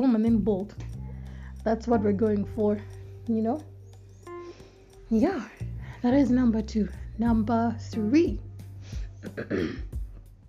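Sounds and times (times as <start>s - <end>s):
speech: 0.0s - 1.0s, 1.6s - 3.7s, 5.1s - 8.5s, 9.3s - 9.9s
gravelly throat clearing: 9.2s - 10.0s.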